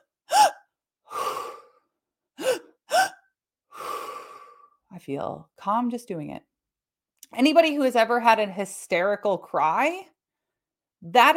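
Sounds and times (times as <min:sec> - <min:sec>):
person doing two sharp inhales and a sigh as a breathing technique: 0:00.3 - 0:04.8
speech: 0:05.0 - 0:06.5, 0:07.3 - 0:10.1, 0:11.0 - 0:11.3.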